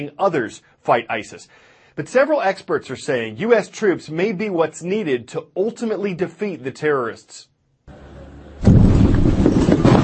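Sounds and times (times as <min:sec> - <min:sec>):
speech: 0:00.0 - 0:07.5
massive explosions from tunnels full of explosives detonated by militants: 0:08.6 - 0:10.0.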